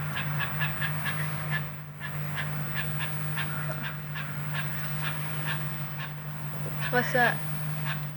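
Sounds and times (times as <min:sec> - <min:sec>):
birds calling outdoors in honking bursts: 0:00.2 - 0:08.0
speech: 0:06.9 - 0:07.5.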